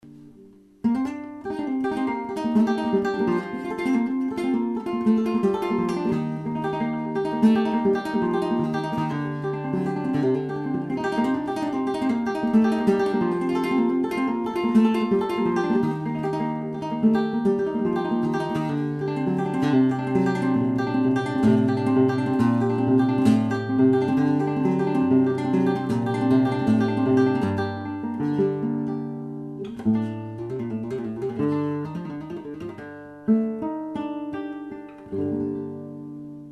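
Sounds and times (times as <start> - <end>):
flamenco granaina: 0.0 - 36.4.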